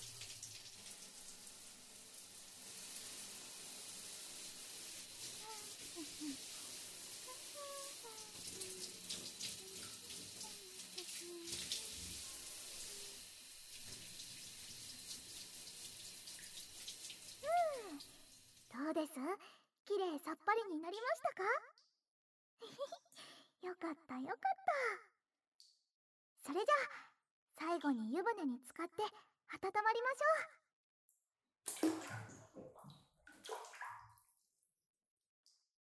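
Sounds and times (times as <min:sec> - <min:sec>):
shower water spraying on body: 0:00.0 - 0:18.7
water drips and gurgles: 0:00.0 - 0:18.8, 0:31.7 - 0:34.2
speech: 0:19.0 - 0:21.7, 0:23.6 - 0:25.0, 0:26.4 - 0:30.6.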